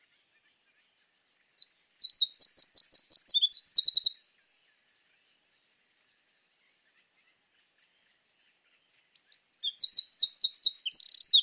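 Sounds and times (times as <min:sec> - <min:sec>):
Eurasian wren Troglodytes troglodytes singing: 0:01.2 - 0:04.4, 0:09.2 - 0:11.4.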